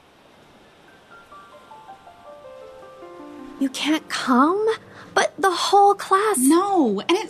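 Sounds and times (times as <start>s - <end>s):
ocean waves breaking on shore: 0.0s - 5.4s
speech: 3.6s - 7.2s.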